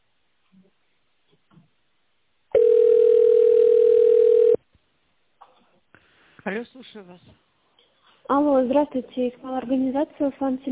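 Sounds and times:
telephone ringback tone while a call is transferred to an operator: 2.5 - 4.6
speech: 6.5 - 7.5, 8.3 - 10.7.

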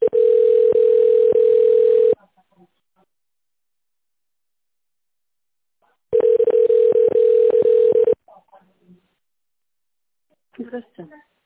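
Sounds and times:
telephone ringback tone while a call connects to an operator: 0.0 - 2.2, 6.1 - 8.2.

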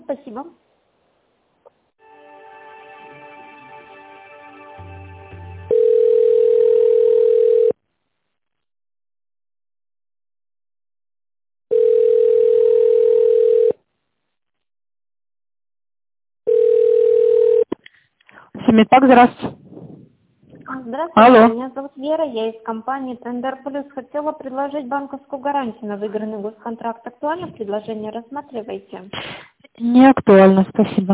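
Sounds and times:
speech: 0.1 - 0.7, 18.8 - 19.6, 21.0 - 31.1
ringback tone on a telephone line during an office call transfer: 5.7 - 7.8, 11.7 - 13.8, 16.5 - 17.7.

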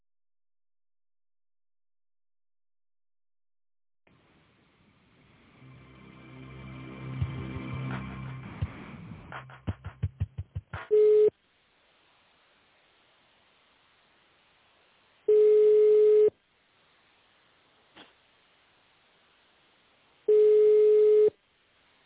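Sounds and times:
telephone ringback tone while a call is being transferred: 15.3 - 16.3, 20.3 - 21.3.

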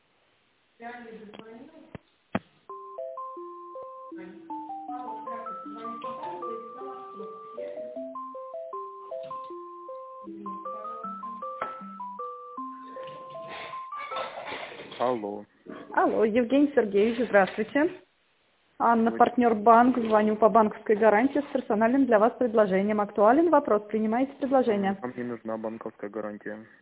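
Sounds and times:
speech: 0.8 - 2.0, 15.0 - 18.0, 18.8 - 26.8
electronic hold music over a telephone line during a call transfer: 2.7 - 14.1.

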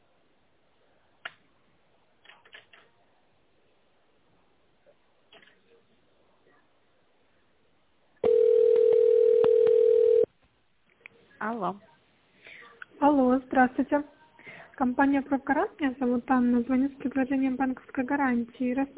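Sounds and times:
telephone line tone while waiting to be connected: 8.2 - 10.3
speech: 11.5 - 11.9, 13.4 - 14.2, 14.8 - 18.9.

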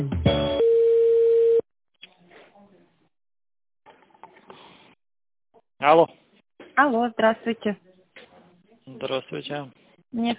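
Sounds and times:
telephone line tone as a call is transferred: 0.6 - 1.6
speech: 5.8 - 6.2, 6.8 - 7.9, 9.0 - 10.3.

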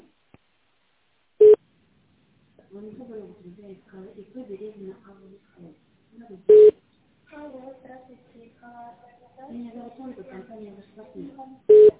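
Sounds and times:
speech: 2.7 - 11.9
telephone line beeps while a call is being put through: 6.5 - 6.8, 11.7 - 11.9
faint tinny telephone line tone: 11.7 - 11.9.

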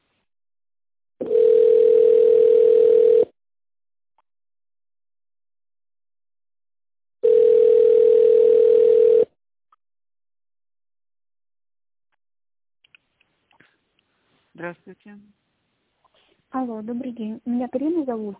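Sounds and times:
telephone ringback tone: 1.2 - 3.3, 7.2 - 9.3
speech: 14.6 - 15.5, 16.5 - 18.3.

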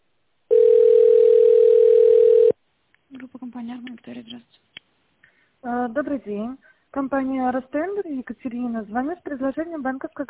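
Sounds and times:
telephone ringback tone while a call waits to connect: 0.5 - 2.6
speech: 3.6 - 4.7, 5.6 - 10.2.

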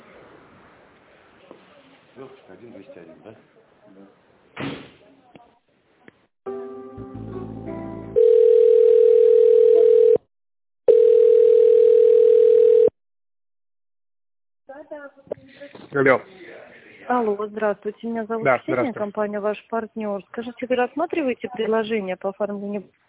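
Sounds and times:
speech: 2.2 - 5.4, 15.9 - 16.4, 17.1 - 23.0
telephone ringback tone during an office call transfer: 8.2 - 10.2, 10.9 - 12.9.

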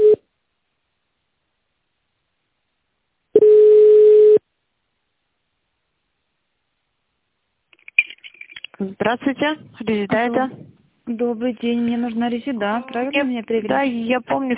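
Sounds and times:
telephone line tone while a call is being transferred: 0.0 - 0.2, 3.4 - 4.4
speech: 8.8 - 14.5.

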